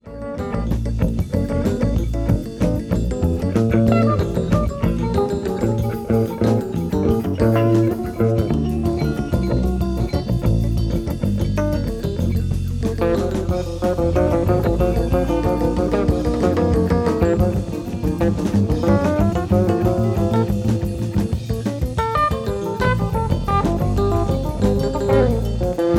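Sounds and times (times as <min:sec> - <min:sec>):
live band jam at Barton Hall Cornell University Ithaca NY: 0:00.0 - 0:25.9.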